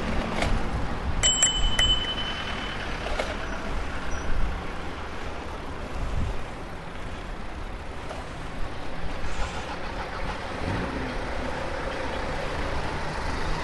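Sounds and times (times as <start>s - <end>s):
passing traffic rumbling: 0.0s - 13.6s
street noise: 0.0s - 13.6s
bicycle bell ringing in a bike lane: 1.2s - 4.2s.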